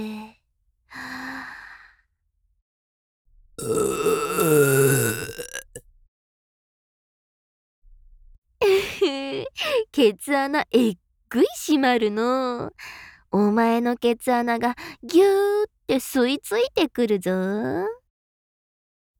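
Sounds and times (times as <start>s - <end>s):
loud drawn-out burp: 3.6s - 5.8s
speech: 9.9s - 18.0s.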